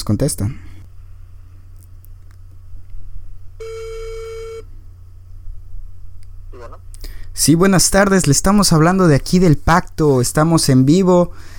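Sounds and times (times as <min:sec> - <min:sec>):
speech: 0:00.0 - 0:00.7, 0:07.4 - 0:11.5
faint low hum: 0:00.0 - 0:11.5
telephone ringback tone on an outgoing call: 0:03.6 - 0:04.7.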